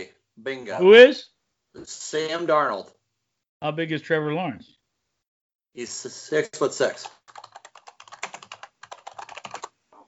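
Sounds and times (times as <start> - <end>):
speech: 0.0 - 3.0, 3.6 - 4.8, 5.8 - 7.2
fast typing on a computer keyboard: 7.0 - 9.8.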